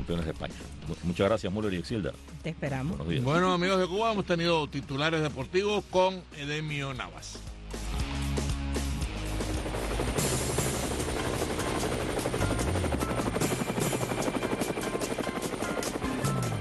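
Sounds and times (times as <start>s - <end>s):
speech: 0.1s - 7.5s
helicopter rotor chopping: 8.8s - 16.5s.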